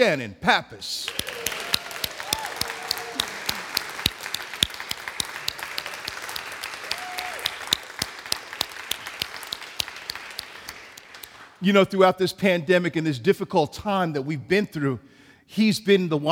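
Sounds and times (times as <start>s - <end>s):
speech: 0.0s - 1.3s, 11.6s - 16.2s
faint cheering voices: 1.0s - 4.1s, 5.7s - 7.9s
crowd of people applauding: 1.0s - 11.6s.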